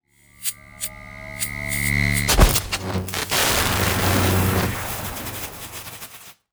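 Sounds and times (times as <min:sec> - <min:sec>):
electric lightning blast: 0:01.4 - 0:06.3.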